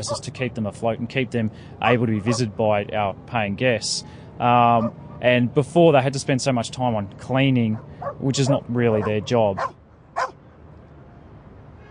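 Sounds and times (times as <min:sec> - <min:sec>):
dog barking: 0:00.0 - 0:00.3, 0:07.7 - 0:10.4
speech: 0:00.0 - 0:10.3.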